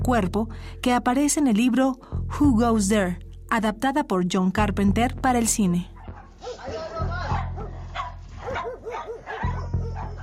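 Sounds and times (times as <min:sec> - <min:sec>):
speech: 0:00.1 - 0:06.8
several dogs barking and yipping excitedly: 0:06.0 - 0:10.2.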